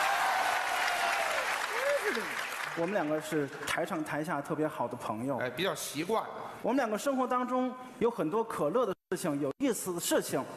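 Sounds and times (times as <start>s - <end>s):
audience applauding at a live stage comedy performance: 0.0s - 3.8s
speech: 2.1s - 10.5s.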